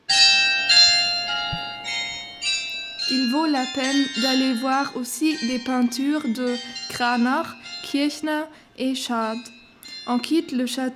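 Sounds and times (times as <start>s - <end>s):
carillon of 48 bells in a castle tower dormer playing a melody: 0.0s - 10.9s
speech: 3.1s - 10.9s.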